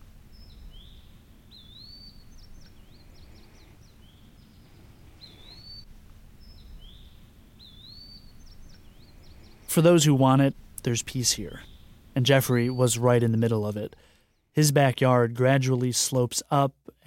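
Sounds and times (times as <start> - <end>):
steady low rumble of wind or ambient noise: 0.0 - 15.9
quick scattered bird chirps outdoors: 0.0 - 16.6
birds giving rising whistles outdoors: 0.3 - 13.4
speech: 9.8 - 16.8.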